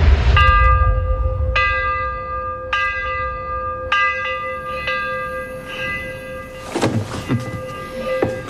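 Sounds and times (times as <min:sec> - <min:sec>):
low rumbling background: 0:00.0 - 0:04.0
church bell tolling: 0:00.0 - 0:08.4.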